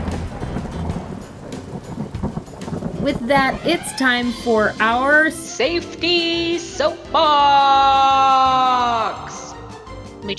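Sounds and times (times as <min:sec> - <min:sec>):
steady rain: 0:00.0 - 0:05.4
low thunder rumbling: 0:00.0 - 0:05.5
speech: 0:03.0 - 0:09.4.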